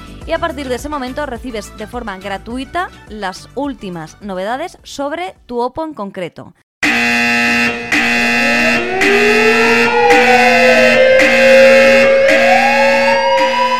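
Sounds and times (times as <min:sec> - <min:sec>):
speech: 0:00.3 - 0:07.4, 0:09.1 - 0:09.6
electronic alarm blaring with pulsing buzzes and wailing tone: 0:06.8 - 0:13.7.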